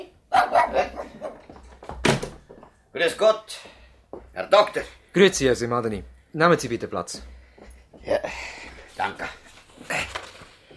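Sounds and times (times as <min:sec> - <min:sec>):
breeder's dog barking: 0:00.3 - 0:01.4
speech: 0:03.0 - 0:03.8, 0:04.4 - 0:07.3, 0:08.0 - 0:09.4.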